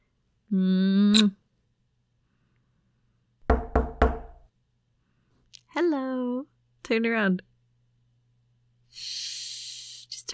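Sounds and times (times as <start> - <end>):
speech: 0.5 - 1.4, 6.9 - 7.5
quick firm knocking on a bedroom door: 3.4 - 4.5.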